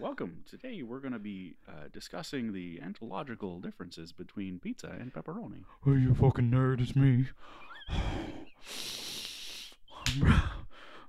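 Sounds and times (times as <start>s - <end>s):
speech: 0.0s - 9.0s, 10.1s - 10.6s
heavy wheezing breathing into the microphone: 7.4s - 11.0s.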